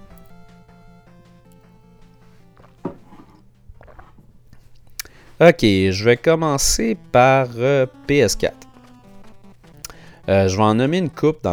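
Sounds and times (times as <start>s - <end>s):
steady tonal hum: 0.0s - 11.5s
person sipping a drink: 2.6s - 5.2s
wet mouth and swallowing noises: 2.6s - 5.2s
speech: 5.4s - 8.6s, 10.3s - 11.5s.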